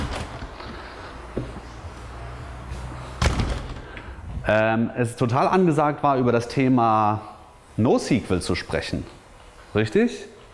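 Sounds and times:
low steady hiss: 0.0 - 10.5
door being closed during a lecture: 3.2 - 4.1
speech: 4.5 - 10.3.

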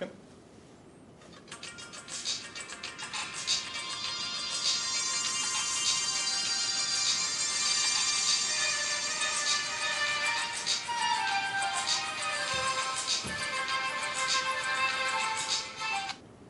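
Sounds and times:
melody playing from five phones in unison: 3.8 - 16.1.

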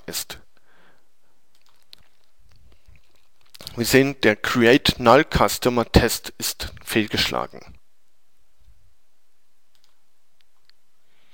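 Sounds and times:
computer mouse clicking on a link: 1.5 - 3.8, 9.7 - 10.8
speech: 3.8 - 7.8.

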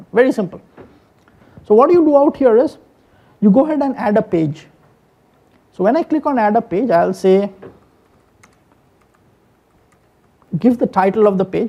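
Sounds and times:
steady low hum: 0.0 - 11.6
speech: 0.1 - 0.7, 1.7 - 2.8, 3.4 - 4.7, 5.7 - 7.8, 10.5 - 11.6
keystrokes on a computer keyboard typing a page title: 7.6 - 10.6.

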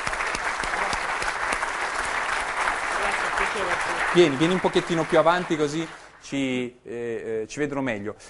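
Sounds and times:
audience applause: 0.0 - 6.3
speech: 3.6 - 8.2.

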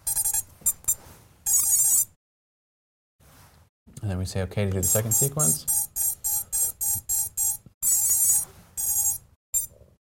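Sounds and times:
speech: 4.0 - 6.0
electronic beeping from a diagnostic tool: 4.8 - 9.7.

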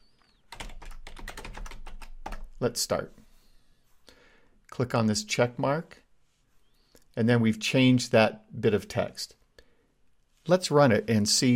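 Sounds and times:
typing on a computer keyboard to retype text in a game editor: 0.5 - 2.5
speech: 2.6 - 3.2, 4.8 - 6.0, 7.2 - 9.4, 10.4 - 11.5.

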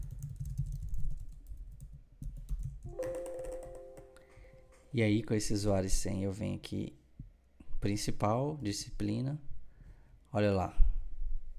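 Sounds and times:
keystrokes on a computer keyboard typing a username and password: 0.0 - 4.8
steady electronic tone: 2.9 - 4.9
speech: 4.9 - 7.0, 7.8 - 9.5, 10.3 - 10.8.

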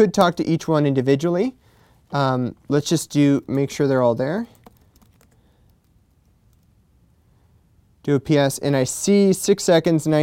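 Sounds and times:
speech: 0.0 - 4.6, 8.0 - 10.2
typing on a computer keyboard: 4.5 - 6.7.

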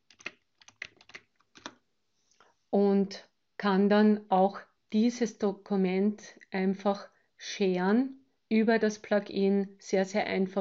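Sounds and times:
typing on a computer keyboard: 0.0 - 1.8
speech: 2.7 - 10.5.

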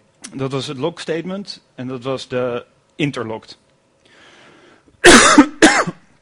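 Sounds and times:
speech: 0.3 - 3.6
person coughing: 5.0 - 6.1.

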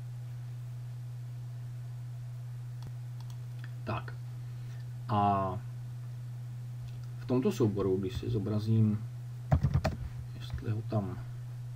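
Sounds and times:
steady low hum: 0.0 - 11.7
computer mouse clicks: 2.8 - 3.7
speech: 3.9 - 4.2, 5.1 - 5.7, 7.3 - 9.1, 10.6 - 11.3.

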